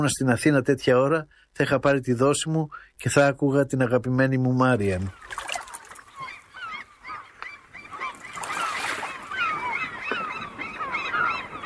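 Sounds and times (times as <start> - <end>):
speech: 0.0 - 5.4
steady outdoor wash at a harbour: 0.0 - 11.6
crowd of seagulls calling at a harbour pier by the sea: 4.9 - 11.6.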